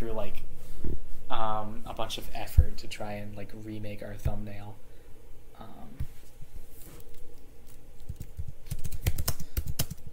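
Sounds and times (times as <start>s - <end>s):
speech: 1.3s - 4.9s
loud typing on a computer keyboard: 8.0s - 10.1s.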